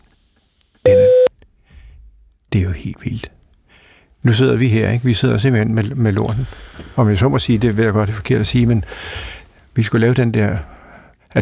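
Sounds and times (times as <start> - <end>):
voicemail prompt beep after phoning a board chairman: 0.9 - 1.3
speech: 2.5 - 3.4, 4.2 - 11.4
faint low rustling: 4.2 - 10.3.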